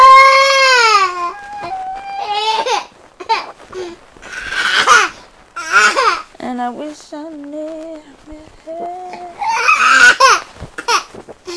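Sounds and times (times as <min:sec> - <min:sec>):
fussy baby crying and whimpering: 0:00.0 - 0:06.2, 0:08.8 - 0:11.1.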